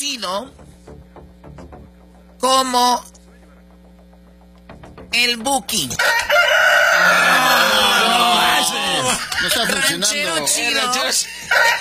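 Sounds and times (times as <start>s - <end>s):
speech: 0.1s - 0.7s, 2.4s - 3.1s, 5.2s - 11.7s
rooster crowing: 6.0s - 10.2s, 11.3s - 11.7s
laughter: 7.1s - 11.7s.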